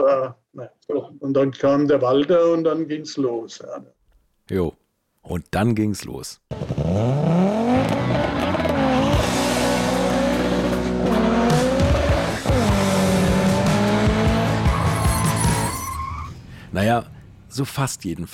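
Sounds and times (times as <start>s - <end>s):
speech: 0.0s - 8.2s, 16.7s - 18.3s
rally car tires screeching and skidding: 6.5s - 17.0s
Opel Ascona rally car engine roaring through gear changes: 6.5s - 17.4s.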